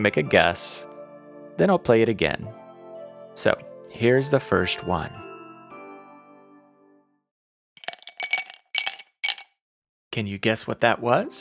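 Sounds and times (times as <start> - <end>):
speech: 0.0 - 0.9, 1.6 - 2.6, 3.4 - 5.2, 10.2 - 11.3
ice cubes dropped into a glass: 7.8 - 9.5.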